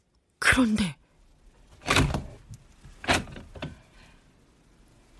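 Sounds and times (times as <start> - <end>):
speech: 0.4 - 1.0
door creaking open: 1.8 - 2.4, 3.0 - 3.8.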